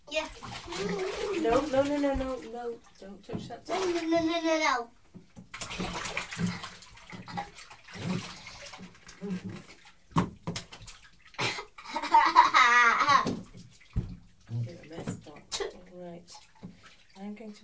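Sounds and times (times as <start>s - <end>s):
child speaking: 0.0s - 5.0s
hot water pouring into a bathtub: 0.0s - 17.6s
speech: 1.5s - 5.0s, 5.8s - 8.4s, 17.5s - 17.6s
child giggling: 11.4s - 13.2s.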